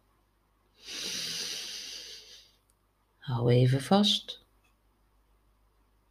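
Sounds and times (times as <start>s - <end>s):
slow inhale during a guided breathing exercise: 0.8s - 2.6s
speech: 3.3s - 4.4s.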